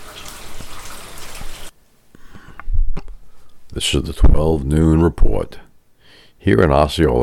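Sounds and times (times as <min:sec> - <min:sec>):
rain pattering: 0:00.0 - 0:01.7
water dripping: 0:00.0 - 0:01.7
speech: 0:03.8 - 0:05.7, 0:06.4 - 0:07.2.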